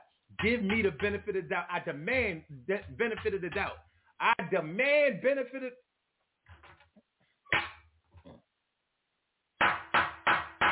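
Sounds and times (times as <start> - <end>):
wooden gavel banging: 0.4 - 3.8, 9.6 - 10.6
speech: 0.4 - 5.9.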